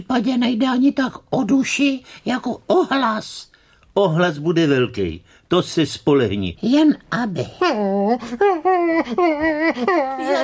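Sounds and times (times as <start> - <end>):
speech: 0.0 - 10.4
dog whining and crying: 7.6 - 10.4.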